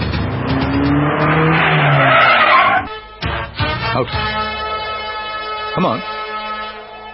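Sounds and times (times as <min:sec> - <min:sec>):
car tires squealing in a long skid while braking hard: 0:00.2 - 0:02.9
speech: 0:04.0 - 0:04.3, 0:05.8 - 0:06.2.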